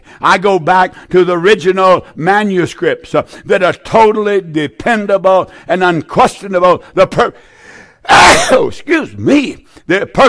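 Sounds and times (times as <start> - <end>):
speech: 0.2 - 10.2
person sneezing: 8.0 - 8.8.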